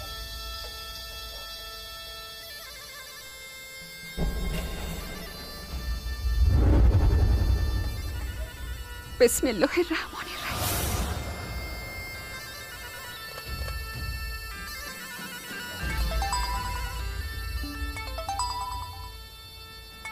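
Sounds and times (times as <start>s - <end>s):
steady loud low rumble: 4.2s - 12.6s
speech: 9.2s - 10.4s
phone ringtone signalling an incoming call: 15.9s - 20.0s.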